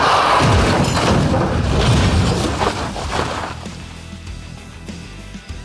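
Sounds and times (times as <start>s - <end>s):
loud booming impacts of van crash: 0.1s - 3.7s
van crashing onto its side after driver loses control: 0.3s - 3.7s
glass shattering: 0.4s - 3.7s.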